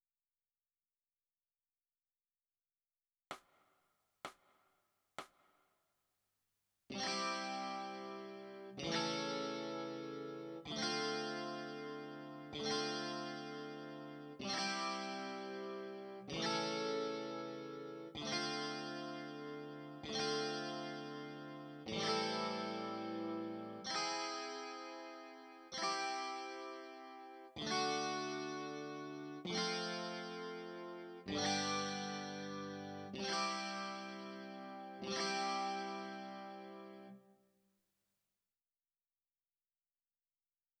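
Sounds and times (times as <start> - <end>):
electric guitar: 6.9 - 37.2.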